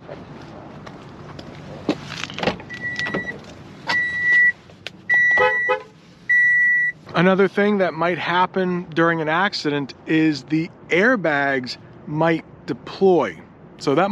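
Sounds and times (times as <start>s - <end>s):
clicks and thumps of someone moving around the car: 0.0s - 7.4s
car horn honking: 5.1s - 6.9s
speech: 7.2s - 14.1s.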